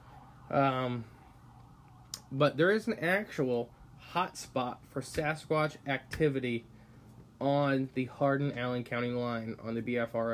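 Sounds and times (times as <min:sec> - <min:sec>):
ambulance siren wail: 0:00.0 - 0:04.3
low hum: 0:00.0 - 0:10.3
speech: 0:00.5 - 0:01.2, 0:02.3 - 0:06.7, 0:07.4 - 0:10.3.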